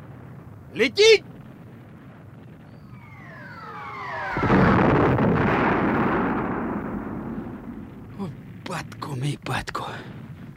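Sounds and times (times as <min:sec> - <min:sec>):
speech: 0:00.7 - 0:01.3, 0:09.3 - 0:10.2
descending whistle of an incoming artillery shell: 0:02.6 - 0:08.2
artillery shell exploding on hard ground at night: 0:03.0 - 0:08.6.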